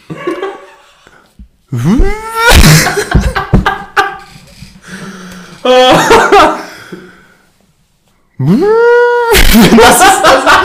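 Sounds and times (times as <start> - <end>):
person imitating a vacuum cleaner in C major: 1.7 - 2.8, 8.4 - 9.6
speech: 1.7 - 3.2, 5.7 - 7.0, 8.4 - 10.6
laughter: 2.4 - 4.4, 5.6 - 6.7, 9.4 - 10.6.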